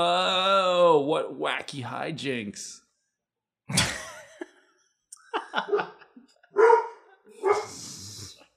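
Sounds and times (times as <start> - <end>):
speech: 0.0 - 0.3, 1.0 - 2.8, 3.7 - 4.0, 5.5 - 6.0
laughter: 3.7 - 6.6
dog barking: 5.7 - 7.8.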